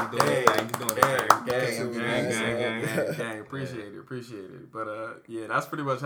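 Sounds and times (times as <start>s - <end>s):
speech: 0.0s - 1.0s, 3.0s - 6.0s
sharp hand claps: 0.0s - 1.9s.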